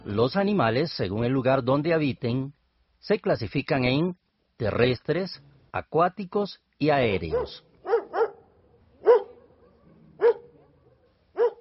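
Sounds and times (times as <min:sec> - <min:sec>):
speech: 0:00.1 - 0:07.7
dog barking: 0:07.2 - 0:11.5.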